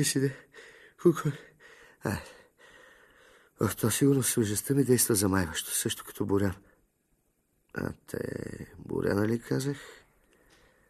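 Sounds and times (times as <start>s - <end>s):
speech: 0.0s - 2.4s, 3.6s - 6.7s, 7.7s - 10.0s
heavy panting breaths from exertion: 0.4s - 3.6s.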